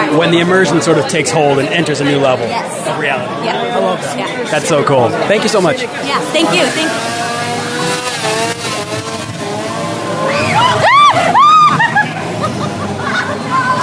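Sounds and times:
speech: 0:00.2 - 0:07.4
chainsaw revving, carried by a clown chasing a woman down the street: 0:05.5 - 0:12.8
laughter: 0:10.4 - 0:13.8.

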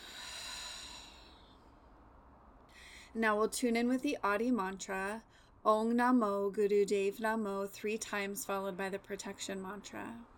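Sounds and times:
slow soft exhale during guided yoga alternate nostril breathing: 0:00.0 - 0:02.0, 0:02.7 - 0:03.1
speech: 0:03.1 - 0:10.3.

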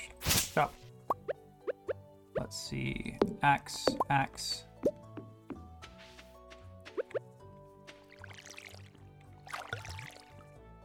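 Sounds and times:
video game music: 0:00.0 - 0:10.8
speech: 0:00.6 - 0:00.8, 0:02.5 - 0:05.0
plopping drips: 0:03.2 - 0:04.2, 0:08.0 - 0:10.4
video game watering can filling from a pond: 0:08.1 - 0:10.4.

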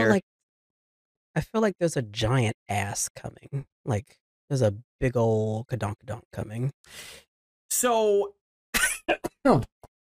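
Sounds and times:
speech: 0:00.0 - 0:00.3, 0:01.4 - 0:08.4, 0:09.1 - 0:09.7
person giving a dry winter cough: 0:08.8 - 0:09.5
person clearing throat: 0:08.8 - 0:09.7.

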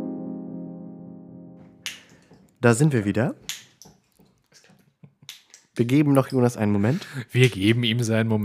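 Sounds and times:
beer bottle cap click: 0:01.9 - 0:02.4, 0:03.5 - 0:04.0
speech: 0:02.6 - 0:03.7, 0:05.8 - 0:08.4.

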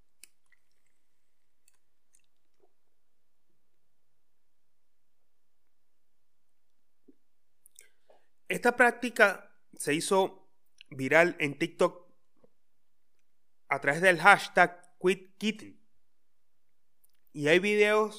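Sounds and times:
person sipping water: 0:00.1 - 0:02.8, 0:07.1 - 0:08.3
soft wet mouth clicks: 0:00.2 - 0:01.0, 0:01.6 - 0:02.8, 0:07.1 - 0:08.0, 0:17.0 - 0:17.3
speech: 0:08.5 - 0:12.0, 0:13.7 - 0:15.8, 0:17.3 - 0:18.1.

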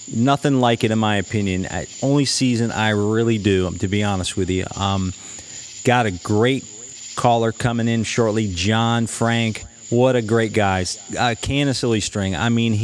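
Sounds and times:
crickets chirping outside on a summer night at sunset in July: 0:00.0 - 0:12.8
man talking into a microphone: 0:00.0 - 0:12.8
speech: 0:00.1 - 0:12.8.

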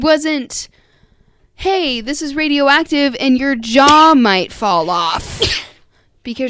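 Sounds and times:
speech: 0:00.0 - 0:00.8, 0:01.6 - 0:05.6, 0:06.3 - 0:06.4
single sharp breathy sneeze: 0:05.2 - 0:05.8.

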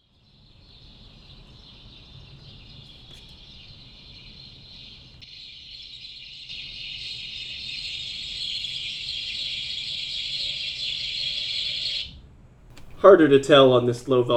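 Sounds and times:
dense high-pitched chorus of birdsong: 0:00.2 - 0:05.0
speech: 0:13.0 - 0:14.3.

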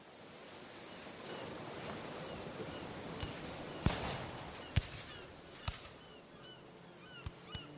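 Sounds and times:
steady surf washing against a sandy shore: 0:00.0 - 0:07.7
faint bird calls: 0:00.8 - 0:07.7.

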